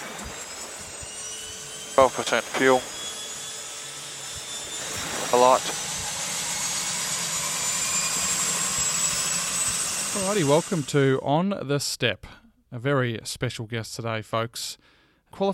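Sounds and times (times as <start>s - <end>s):
seaplane right radial engine turning over and droning: 0.0s - 11.1s
speech: 2.0s - 2.9s, 5.3s - 5.8s, 10.2s - 15.5s.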